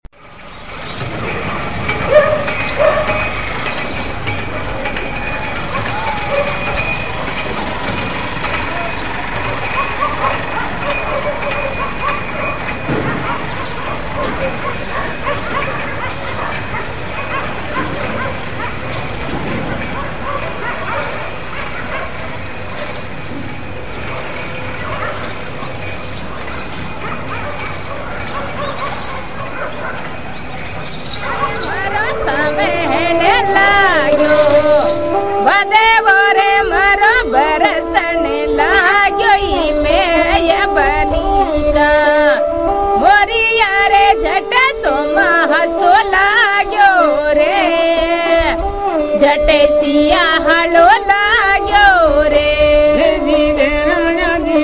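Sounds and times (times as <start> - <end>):
music in India: 0.2 - 54.6.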